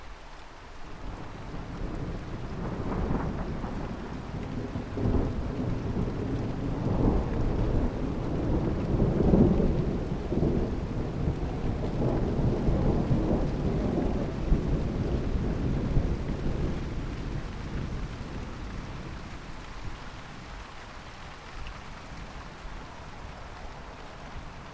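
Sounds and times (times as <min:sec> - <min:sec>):
steady heavy rain: 0:00.0 - 0:24.7
long low rolling peal of thunder: 0:01.1 - 0:19.3.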